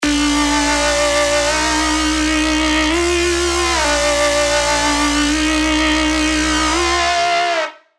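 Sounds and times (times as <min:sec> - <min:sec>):
tech house bass lead synth: 0:00.0 - 0:07.5.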